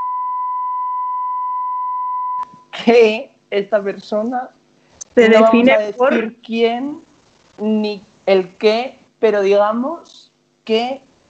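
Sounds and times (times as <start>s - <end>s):
loud steady censor bleep covering a person's name: 0.0s - 2.7s
speech: 2.8s - 4.6s, 5.2s - 11.1s.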